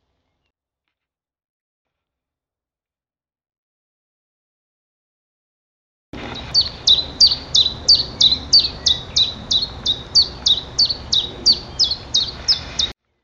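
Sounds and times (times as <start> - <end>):
Common chiffchaff song: 6.2 - 13.0.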